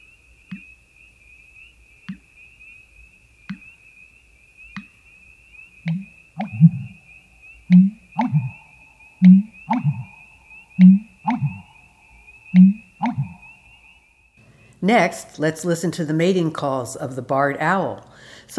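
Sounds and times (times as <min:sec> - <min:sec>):
American bittern giving a deep resonant gulping mating call: 0:05.9 - 0:07.0, 0:07.7 - 0:11.8, 0:12.5 - 0:13.5
steady high ringing tone: 0:05.9 - 0:14.4
speech: 0:14.9 - 0:18.5.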